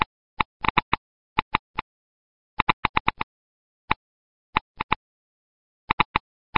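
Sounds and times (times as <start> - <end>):
geiger counter loop: 0.0 - 1.9, 2.6 - 3.3, 4.6 - 5.0, 5.9 - 6.5.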